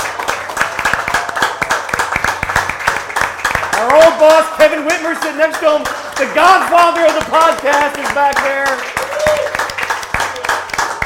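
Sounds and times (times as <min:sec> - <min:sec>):
room full of people at an event applauding: 0:00.0 - 0:11.0
speech: 0:03.8 - 0:09.5.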